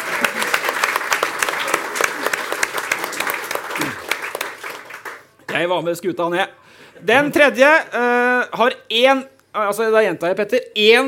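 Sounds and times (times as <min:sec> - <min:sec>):
applause from a small group: 0:00.0 - 0:05.5
speech: 0:05.6 - 0:11.0.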